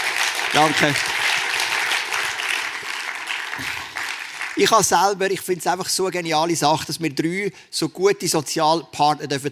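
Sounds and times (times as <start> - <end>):
audience applause: 0.0 - 4.9
speech: 0.5 - 1.1, 4.6 - 9.5.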